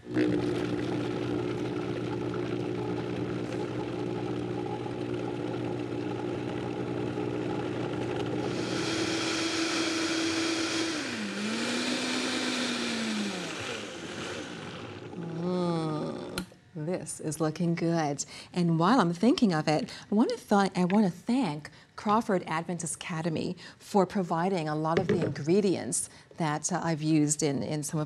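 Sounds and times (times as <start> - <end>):
powerful blender churning thick contents: 0.0 - 15.4
speech: 16.9 - 28.0.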